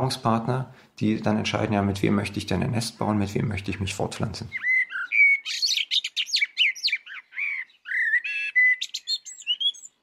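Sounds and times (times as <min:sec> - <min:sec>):
speech: 0:00.0 - 0:04.7
single bird singing chirps trills and whistled notes: 0:03.6 - 0:10.0.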